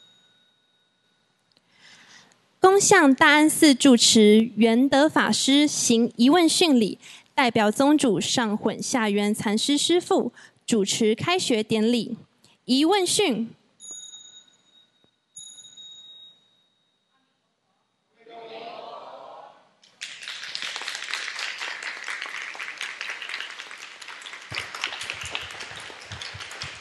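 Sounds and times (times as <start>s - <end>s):
ringing bell tones: 0.0s - 1.5s, 13.8s - 17.1s
speech: 2.7s - 13.6s
large crowd applauding: 19.8s - 26.8s.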